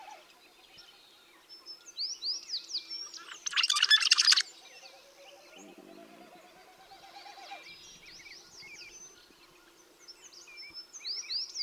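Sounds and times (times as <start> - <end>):
rusty blackbird giving a harsh crackling burst: 3.2 - 4.4.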